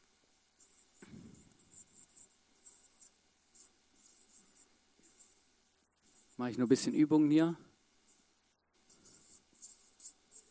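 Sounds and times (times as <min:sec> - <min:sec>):
pen scratching across paper: 0:00.3 - 0:07.1, 0:08.0 - 0:10.4
speech: 0:06.4 - 0:07.7.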